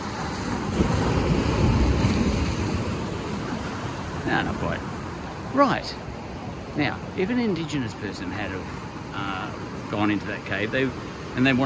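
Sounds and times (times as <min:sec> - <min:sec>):
wind buffeting the microphone: 0:00.0 - 0:06.8
big ocean wave breaking on the shore: 0:00.0 - 0:11.6
speech: 0:04.3 - 0:04.9, 0:05.5 - 0:06.0, 0:06.8 - 0:11.6.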